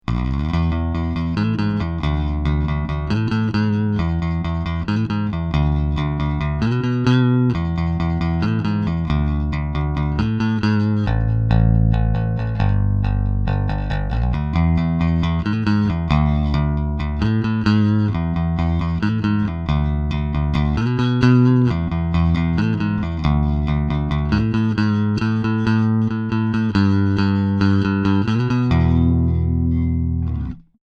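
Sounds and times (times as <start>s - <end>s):
unprocessed bass guitar: 0.0s - 30.8s.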